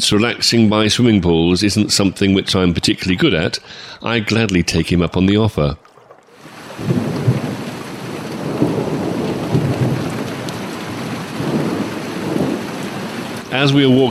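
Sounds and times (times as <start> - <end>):
speech: 0.0 - 5.9, 13.5 - 14.0
low rolling thunder: 6.4 - 14.0
steady rain pouring: 6.4 - 14.0.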